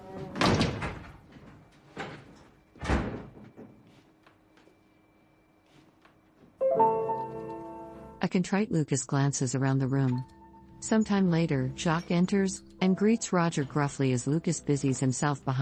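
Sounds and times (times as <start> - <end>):
door banging shut in a bar: 0.3 - 1.2, 2.8 - 3.6
music: 6.6 - 8.2, 10.0 - 15.6
speech: 8.3 - 15.6.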